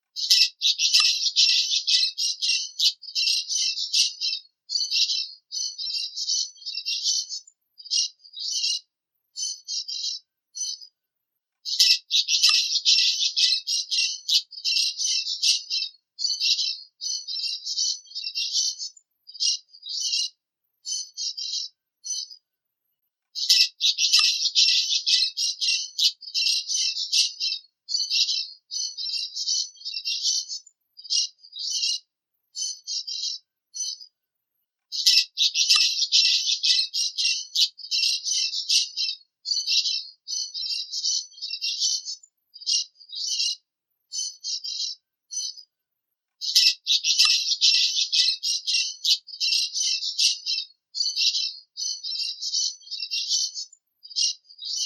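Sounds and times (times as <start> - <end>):
periquito testinha parakeet singing: 0.0 - 10.9, 11.6 - 22.4, 23.4 - 34.1, 34.9 - 45.6, 46.4 - 54.8.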